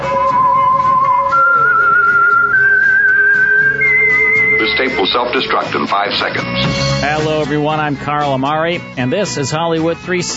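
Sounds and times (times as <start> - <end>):
whistled radio show theme melody: 0.0 - 5.7
steady low musical accompaniment: 0.0 - 10.3
speech: 4.8 - 10.3.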